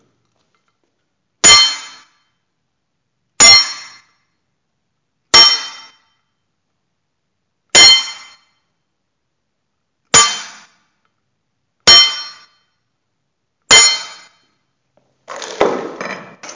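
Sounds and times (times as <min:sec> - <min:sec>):
fencing blade striking an épée bell guard: 0:01.5 - 0:02.2, 0:03.4 - 0:04.1, 0:05.4 - 0:06.1, 0:07.8 - 0:08.5, 0:10.2 - 0:10.7, 0:11.9 - 0:12.6, 0:13.7 - 0:14.5.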